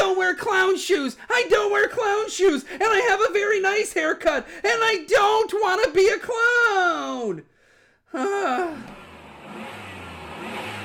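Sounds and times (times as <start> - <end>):
speech: 0.4 - 7.5, 8.1 - 9.8
bus engine revving with a rising whine: 8.9 - 10.8.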